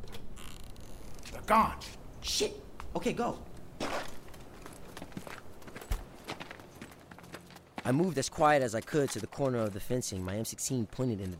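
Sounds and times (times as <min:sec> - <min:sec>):
speech: 0:01.3 - 0:04.1, 0:07.9 - 0:11.3
footsteps thudding and scraping: 0:03.8 - 0:09.7.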